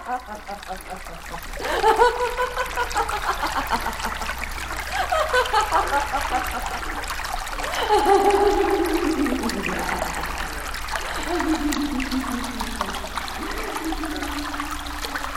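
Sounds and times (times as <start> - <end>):
laughter: 0.0 - 15.3
water trickling and gurgling in a forest marsh: 0.0 - 15.3
swirling rising tones: 7.5 - 15.3.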